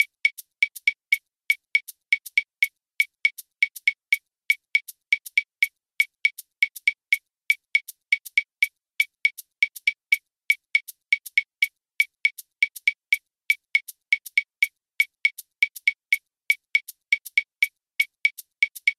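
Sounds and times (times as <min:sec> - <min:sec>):
Columbia clave rhythm from Matanzas: 0:00.0 - 0:18.9.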